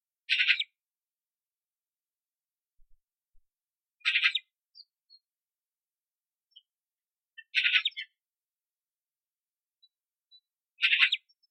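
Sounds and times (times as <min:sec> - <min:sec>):
magpie calling: 0:00.3 - 0:00.7, 0:04.0 - 0:04.5, 0:07.4 - 0:08.2, 0:10.8 - 0:11.4.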